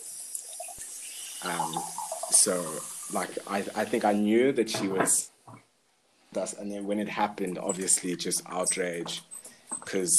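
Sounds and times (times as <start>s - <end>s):
water running steadily from a tap: 0.0s - 4.0s
speech: 1.4s - 5.6s, 6.3s - 10.1s.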